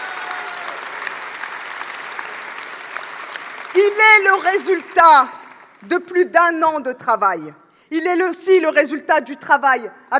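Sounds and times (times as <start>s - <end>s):
large crowd applauding at a political rally: 0.0s - 5.9s
speech: 3.8s - 10.1s.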